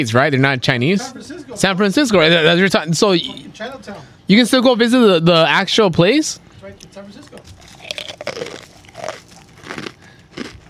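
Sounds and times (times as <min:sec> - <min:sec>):
speech: 0:00.0 - 0:07.5
crunchy food being bitten and chewed: 0:07.2 - 0:10.6.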